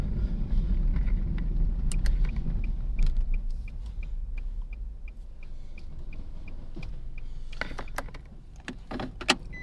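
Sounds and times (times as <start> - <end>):
low road and engine rumble inside a moving car: 0.0 - 9.6
regular light ticking in a car: 1.4 - 8.8.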